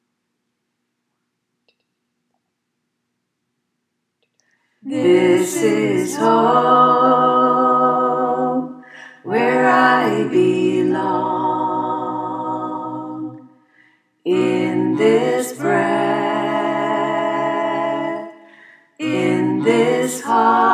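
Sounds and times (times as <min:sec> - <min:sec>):
tenor voice singing: 0:04.8 - 0:13.4, 0:14.3 - 0:18.4, 0:19.0 - 0:20.7.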